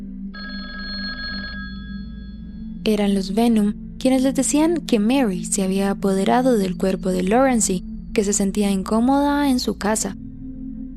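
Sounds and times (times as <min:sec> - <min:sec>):
telephone ringing in a family home: 0:00.4 - 0:02.2
speech: 0:02.9 - 0:10.2.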